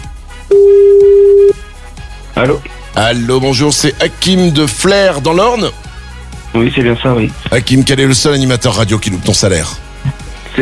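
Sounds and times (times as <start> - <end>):
speech: 0.5 - 0.8, 2.4 - 5.8, 6.5 - 10.6
telephone tone on a radio phone-in: 0.5 - 1.6.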